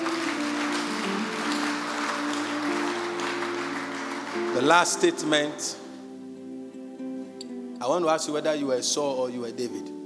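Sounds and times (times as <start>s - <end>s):
crowd applauding in a large room: 0.0s - 5.8s
speech: 4.6s - 5.8s, 7.8s - 9.9s.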